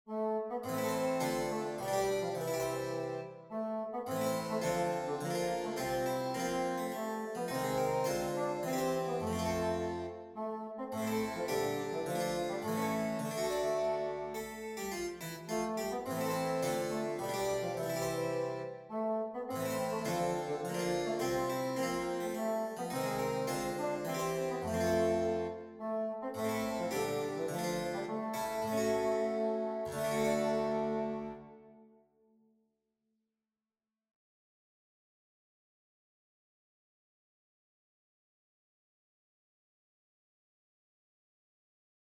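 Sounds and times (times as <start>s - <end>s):
bassoon in a duet: 0.1s - 31.8s
harpsichord in a duet: 0.8s - 3.3s, 4.3s - 10.2s, 11.0s - 18.8s, 19.6s - 25.8s, 26.4s - 31.4s.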